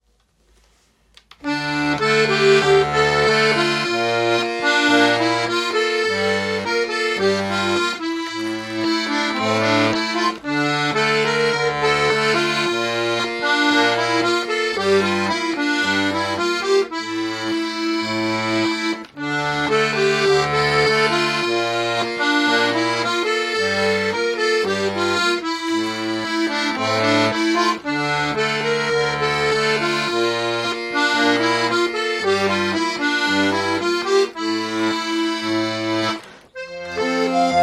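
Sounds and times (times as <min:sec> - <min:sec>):
British swing tune, diatonic: 0:01.3 - 0:37.6.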